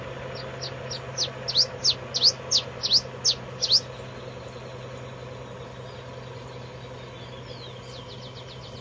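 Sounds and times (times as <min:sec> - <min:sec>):
constant low hum: 0:00.2 - 0:04.6
bird song: 0:00.2 - 0:08.7.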